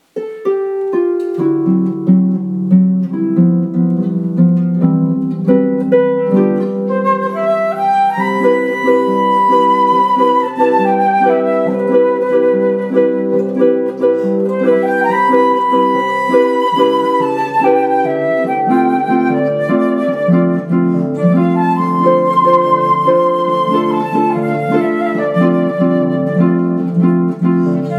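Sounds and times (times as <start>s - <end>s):
harp: 0.0s - 27.9s
flute: 6.2s - 27.9s.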